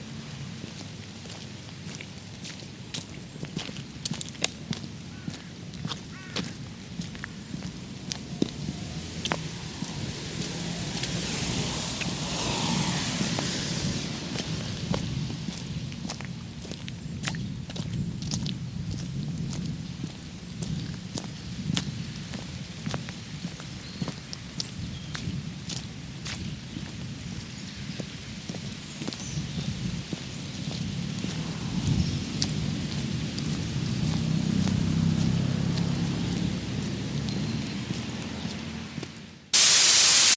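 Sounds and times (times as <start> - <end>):
steady rain falling onto puddles: 0.7 - 31.4, 32.3 - 40.3
low rumble: 7.3 - 16.8.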